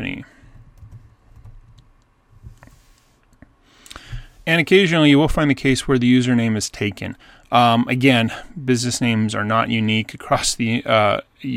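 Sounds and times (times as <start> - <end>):
faint steady hiss: 0.0 - 11.5
soft typing on a computer keyboard: 0.5 - 1.9
speech: 4.5 - 11.5.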